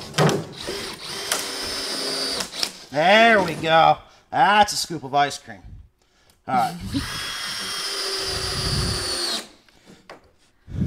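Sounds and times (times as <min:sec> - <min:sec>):
power drill driving a pan head screw: 0:00.0 - 0:03.6, 0:06.6 - 0:09.7
speech: 0:02.9 - 0:05.7, 0:06.4 - 0:07.3.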